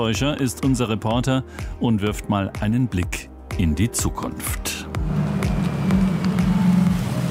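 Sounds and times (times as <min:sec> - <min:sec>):
speech: 0:00.0 - 0:05.2
electric bus tyre and road noise: 0:05.0 - 0:07.2
small electric bus humming: 0:05.0 - 0:07.2.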